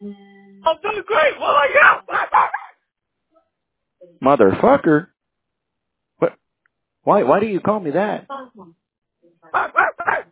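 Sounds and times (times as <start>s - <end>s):
speech: 0.0s - 2.0s, 4.2s - 5.1s, 6.2s - 6.4s, 7.0s - 8.8s
dog barking over a telephone line: 1.6s - 2.7s, 9.5s - 10.3s.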